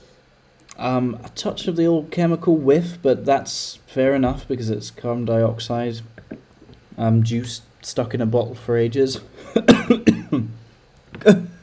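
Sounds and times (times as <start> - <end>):
speech: 0.8 - 6.4, 7.0 - 10.5, 11.2 - 11.5
person coughing: 9.4 - 10.6, 11.2 - 11.6.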